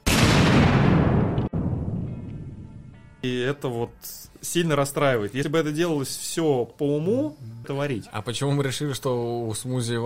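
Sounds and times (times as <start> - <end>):
loud explosion with deep rumbling decay: 0.0 - 2.9
speech: 3.2 - 10.0.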